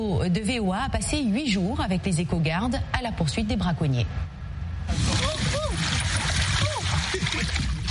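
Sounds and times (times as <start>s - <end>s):
speech: 0.0s - 6.0s
dugout canoe gliding on river water: 4.9s - 7.8s.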